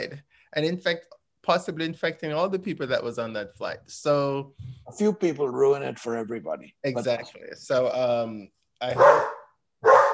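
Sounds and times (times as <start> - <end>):
speech: 0.0 - 9.9
dog barking: 9.0 - 10.1.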